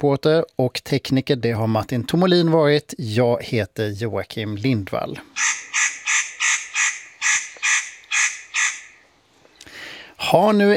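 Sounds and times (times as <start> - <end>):
speech: 0.0 - 5.9, 10.3 - 10.7
spotted nutcracker giving harsh rasping calls: 5.3 - 9.7.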